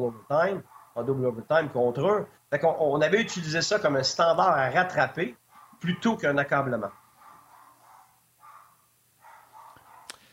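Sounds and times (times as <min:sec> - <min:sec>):
dog barking: 0:00.0 - 0:01.1, 0:05.5 - 0:06.2, 0:06.8 - 0:10.3
speech: 0:00.0 - 0:07.0.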